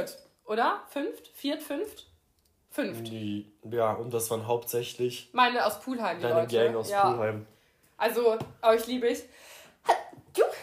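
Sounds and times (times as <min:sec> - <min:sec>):
speech: 0:00.0 - 0:02.1, 0:02.7 - 0:10.6
person sneezing: 0:09.8 - 0:10.6.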